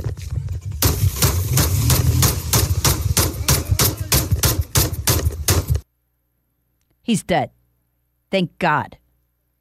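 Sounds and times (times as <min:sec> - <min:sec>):
gunshots fired by a sheriff's deputy: 0:00.8 - 0:05.8
speech: 0:07.1 - 0:07.6, 0:08.3 - 0:09.0.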